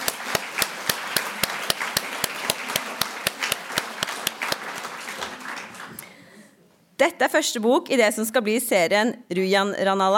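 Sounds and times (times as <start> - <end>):
audience applause: 0.0 - 6.4
speech: 7.0 - 10.1.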